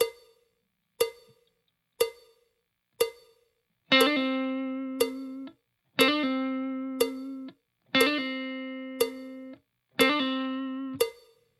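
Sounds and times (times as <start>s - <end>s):
slow blues guitar: 3.9s - 11.0s.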